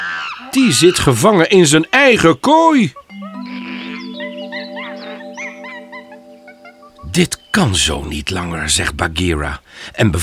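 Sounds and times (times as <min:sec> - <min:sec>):
monkeys shrieking and chattering: 0:00.0 - 0:01.2, 0:02.9 - 0:07.1
speech: 0:00.5 - 0:03.1, 0:07.2 - 0:10.2
sustained musical drone: 0:03.1 - 0:07.6.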